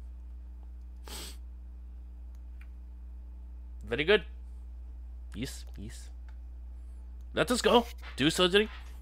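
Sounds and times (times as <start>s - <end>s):
steady low hum: 0.0s - 9.0s
voice imitating an animal sniffing at a duffel bag of cash: 1.0s - 1.4s
speech: 3.9s - 4.3s, 5.4s - 6.2s, 7.3s - 8.9s.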